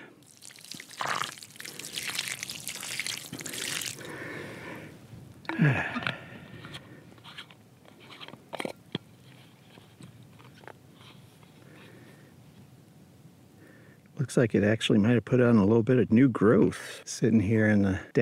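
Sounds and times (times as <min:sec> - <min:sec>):
water poured from a bottle onto a small tree: 0:00.0 - 0:04.3
gurgles and drips: 0:00.0 - 0:04.8
speech: 0:05.6 - 0:06.0, 0:14.4 - 0:18.2.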